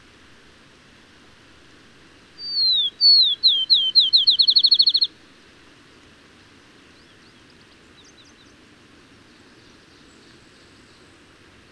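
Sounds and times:
faint background hiss: 0:00.0 - 0:11.7
bird whistling then trilling: 0:02.4 - 0:05.1.

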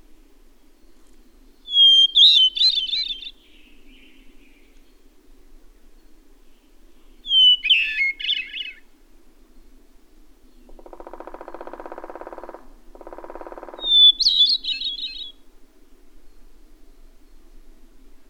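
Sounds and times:
bird song with high whistle and twittering warble: 0:00.6 - 0:05.1, 0:05.8 - 0:08.9, 0:10.4 - 0:15.4.

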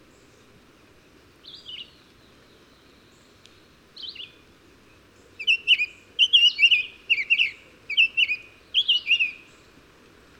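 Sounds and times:
faint low background hiss: 0:00.0 - 0:10.3
bird song of short chirpy whistled phrases: 0:01.4 - 0:02.0, 0:05.4 - 0:09.5.

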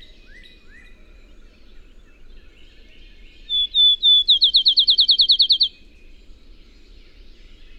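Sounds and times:
bird singing whistled notes and a slurred trill: 0:03.5 - 0:05.7.

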